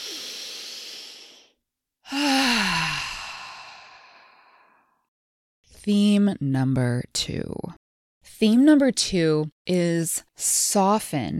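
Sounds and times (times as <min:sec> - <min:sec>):
long loud exhale ending in a voiced sigh: 0:00.0 - 0:01.5, 0:02.1 - 0:04.9
deep breath drawn in: 0:00.0 - 0:05.0
speech: 0:05.8 - 0:07.8, 0:08.4 - 0:11.3.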